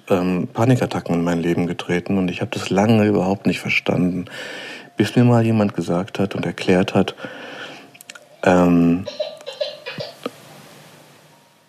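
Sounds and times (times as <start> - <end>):
speech: 0.1 - 7.6, 8.4 - 9.3
baby coos and giggly squeals through a baby monitor speaker: 8.4 - 10.3.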